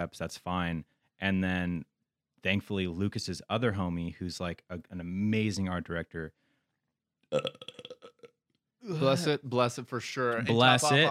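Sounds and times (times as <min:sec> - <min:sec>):
speech: 0:00.0 - 0:06.4, 0:07.3 - 0:07.9, 0:08.8 - 0:11.0
gurgly burp: 0:07.3 - 0:08.4.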